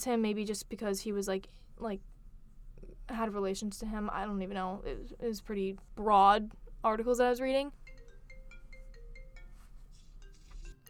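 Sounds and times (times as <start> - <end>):
speech: 0.0 - 2.2, 2.8 - 7.8
low hum: 0.0 - 10.8
phone ringtone playing an electronic melody: 7.8 - 10.8.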